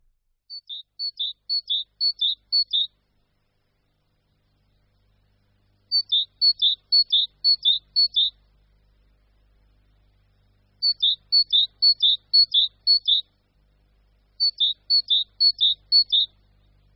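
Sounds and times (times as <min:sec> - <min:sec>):
great tit early-spring song: 0:00.5 - 0:03.0, 0:05.9 - 0:08.4, 0:10.8 - 0:13.4, 0:14.4 - 0:16.4.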